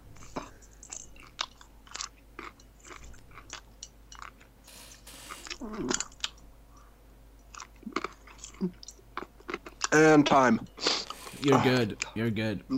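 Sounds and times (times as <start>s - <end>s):
wet chewing and crunching: 0.0s - 4.6s, 5.4s - 6.5s, 7.4s - 10.0s
low steady hum: 0.0s - 12.7s
speech: 10.0s - 10.8s, 11.4s - 12.7s.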